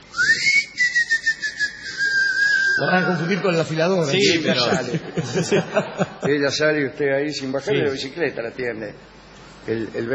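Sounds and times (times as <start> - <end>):
person whistling a call: 0.0 - 3.0
speech: 2.8 - 10.1
laughter: 4.1 - 6.7.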